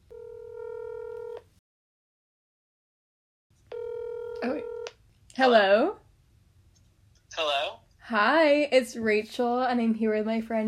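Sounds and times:
steady electronic telephone tone before a call: 0.1s - 1.4s, 3.7s - 4.9s
speech: 4.4s - 4.7s, 5.4s - 6.0s, 7.4s - 10.6s.

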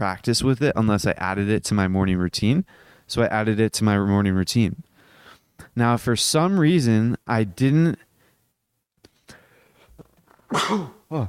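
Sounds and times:
speech: 0.0s - 4.9s, 5.7s - 8.1s, 10.5s - 11.2s
loud sneeze: 10.5s - 11.2s.

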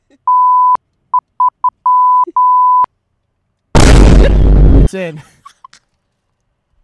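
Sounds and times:
clear electronic beeps of a message notification: 1.4s - 2.9s
abrupt loud burst of harsh noise: 3.8s - 4.9s
speech: 4.9s - 5.4s.

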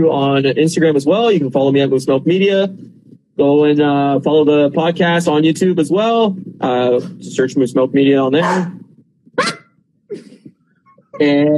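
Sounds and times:
speech: 0.0s - 8.8s, 11.2s - 11.5s
dog barking: 8.4s - 8.8s, 9.4s - 9.7s.

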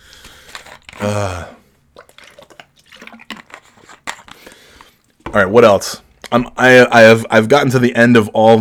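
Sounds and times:
speech: 1.0s - 1.6s, 5.3s - 8.6s
water pouring into a container: 2.0s - 3.6s.

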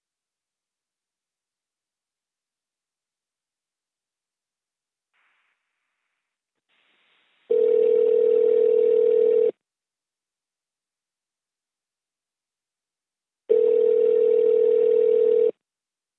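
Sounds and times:
telephone ringback tone buzzing: 7.5s - 9.5s, 13.5s - 15.5s.

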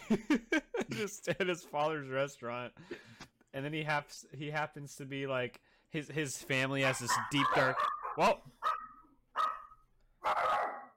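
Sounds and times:
speech: 0.1s - 8.8s
dog barking: 6.8s - 10.9s.

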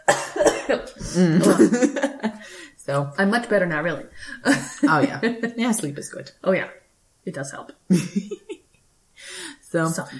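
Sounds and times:
person coughing harshly: 0.0s - 2.4s
speech: 0.7s - 8.6s, 9.2s - 10.1s.

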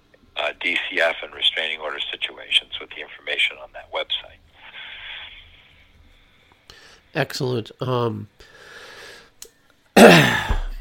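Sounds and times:
speech: 0.6s - 4.4s, 7.1s - 8.5s
throaty cough: 10.0s - 10.7s.

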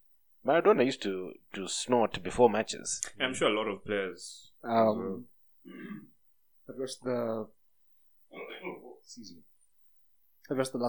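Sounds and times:
speech: 0.4s - 6.1s, 6.7s - 7.6s, 8.3s - 9.5s, 10.5s - 10.8s
person clearing throat: 5.7s - 6.1s, 8.3s - 8.9s.

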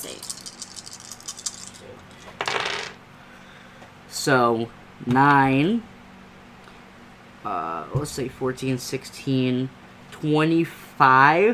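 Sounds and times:
dice clattering across a table: 0.0s - 3.0s
speech: 4.2s - 5.9s, 7.4s - 11.5s.

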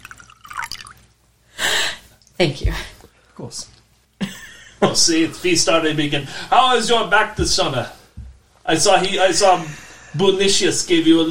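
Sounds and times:
drink poured from a bottle into a glass: 0.0s - 1.1s
trickling drips: 0.0s - 1.1s
speech: 2.4s - 3.8s, 4.8s - 8.0s, 8.7s - 11.2s.

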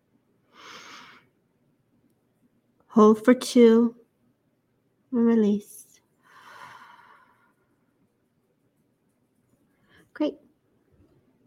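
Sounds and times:
speech: 3.0s - 4.0s, 5.1s - 5.8s, 10.2s - 10.4s
deep breath drawn in through the nose or mouth: 6.2s - 7.5s.

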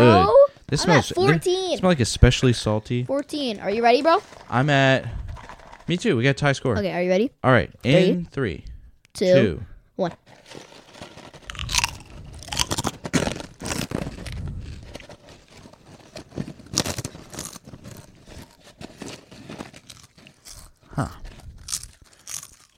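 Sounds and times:
speech: 0.0s - 5.2s, 5.9s - 10.7s, 21.0s - 21.2s
crunching of cheddar and red onion chutney crisps being chewed: 10.2s - 22.7s.

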